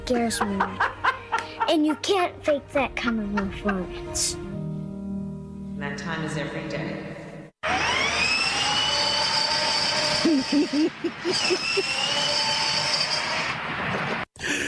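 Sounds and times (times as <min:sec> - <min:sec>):
speech: 0:00.1 - 0:01.0, 0:01.7 - 0:04.5, 0:05.8 - 0:07.8, 0:10.3 - 0:12.6
laughter: 0:00.4 - 0:02.0, 0:10.2 - 0:12.0
vehicle engine whining and roaring as it revs: 0:07.6 - 0:14.2.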